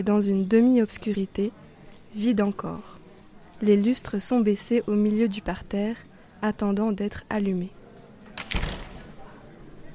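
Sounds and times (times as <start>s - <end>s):
speech: 0.0s - 2.9s, 3.6s - 7.8s
theatre hall door being opened: 8.2s - 9.4s.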